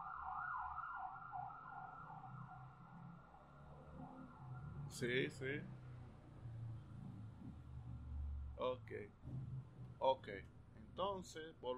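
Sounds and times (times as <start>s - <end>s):
ambulance siren wailing in a rising and falling pattern: 0.0s - 5.0s
low traffic rumble: 0.0s - 11.7s
speech: 4.9s - 5.8s, 8.6s - 9.4s, 10.0s - 11.7s.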